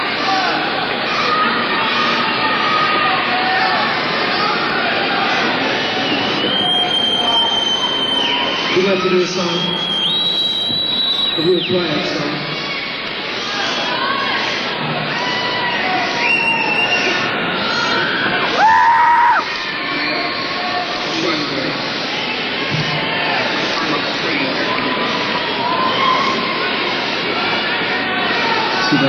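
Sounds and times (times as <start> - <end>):
large concert crowd yelling and screaming: 0.0 - 29.0
shrill whistle-like cry from the concert crowd: 5.8 - 8.8, 9.6 - 11.8, 16.1 - 19.5
speech: 9.0 - 9.8, 11.4 - 12.4.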